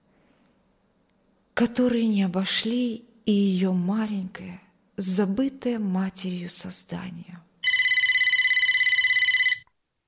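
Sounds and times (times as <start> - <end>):
speech: 1.6 - 7.4
shrill telephone bell ringing: 7.6 - 9.7.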